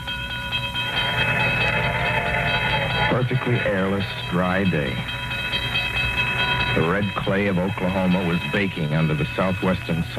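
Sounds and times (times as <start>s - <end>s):
train rumbling past a junction: 0.6s - 10.0s
metallic squealing of train wheels: 0.8s - 7.7s
speech: 3.2s - 5.2s, 6.8s - 10.1s.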